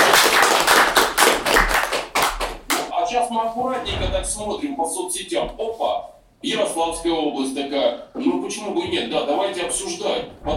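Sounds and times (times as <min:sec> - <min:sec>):
audience clapping: 0:00.0 - 0:02.9
speech: 0:03.3 - 0:10.5.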